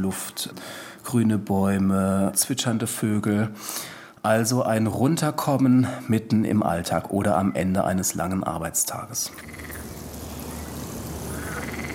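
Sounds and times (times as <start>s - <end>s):
speech: 0.0s - 9.8s
frogs croaking in a city park: 9.3s - 11.9s.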